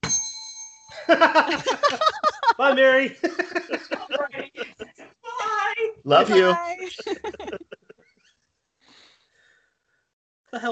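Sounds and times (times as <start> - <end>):
small hand bell struck: 0.0 - 1.2
laughter: 1.0 - 8.0
speech: 1.1 - 4.8, 6.0 - 7.5, 10.5 - 10.7.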